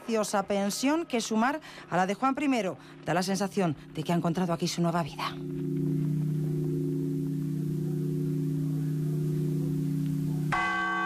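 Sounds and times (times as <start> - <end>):
speech: 0.1 - 6.1
church bells ringing in Toledo for the death of a king: 3.8 - 11.0.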